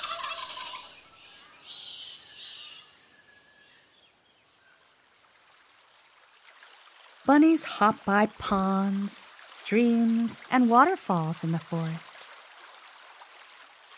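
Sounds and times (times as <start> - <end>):
wild turkeys gobbling: 0.0 - 1.0
speech: 7.3 - 12.3.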